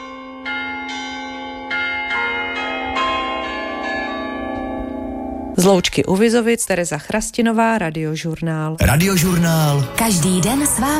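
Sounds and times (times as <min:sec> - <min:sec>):
chapel bells ringing: 0:00.0 - 0:06.0
speech: 0:05.6 - 0:10.9.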